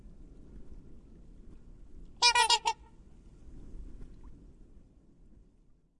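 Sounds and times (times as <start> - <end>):
black swan Cygnus atratus stuttering honk: 2.2 - 2.8.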